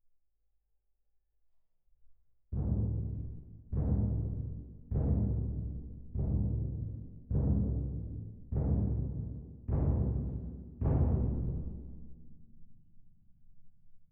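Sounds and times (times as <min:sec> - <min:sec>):
percussion: 0:02.5 - 0:12.8.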